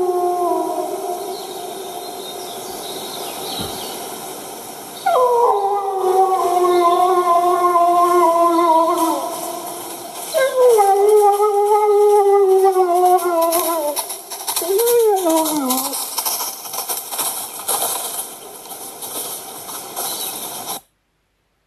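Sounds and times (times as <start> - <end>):
wolf howling at mid distance: 0.0 - 2.5, 5.0 - 16.1.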